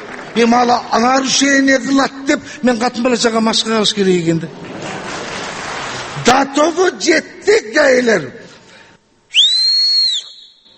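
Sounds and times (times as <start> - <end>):
speech: 0.4 - 5.0, 6.4 - 8.4
person whistling through the hand: 9.3 - 10.7.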